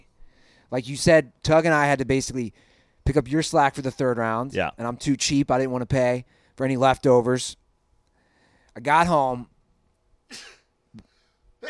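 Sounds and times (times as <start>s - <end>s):
speech: 0.7s - 7.6s, 8.8s - 9.5s, 10.3s - 11.6s
person sneezing: 10.3s - 11.6s.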